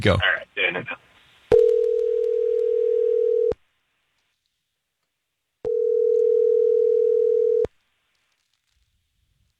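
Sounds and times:
electronic phone ringback tone: 0:01.5 - 0:03.6, 0:05.7 - 0:07.7.

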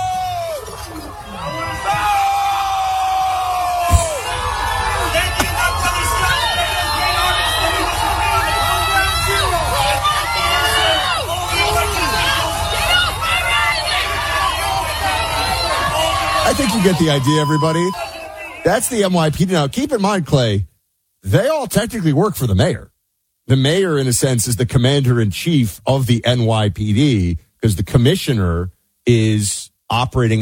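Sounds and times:
shouts and whoops from the crowd: 0:00.0 - 0:18.6
large crowd booing and jeering: 0:00.0 - 0:18.7
speech: 0:16.6 - 0:22.9, 0:23.5 - 0:30.4.

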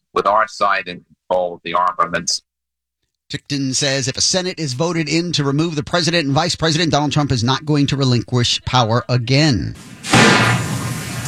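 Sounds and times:
speech: 0:00.2 - 0:02.5, 0:03.3 - 0:10.7
loud water splash: 0:09.9 - 0:11.2.

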